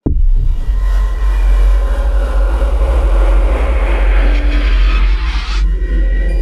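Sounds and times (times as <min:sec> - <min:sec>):
tension builder impact: 0:00.0 - 0:06.3.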